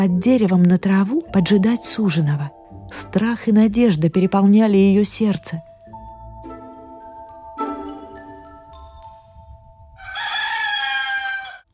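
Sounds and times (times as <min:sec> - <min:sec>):
speech: 0:00.0 - 0:05.7
rooster crowing: 0:10.0 - 0:11.7.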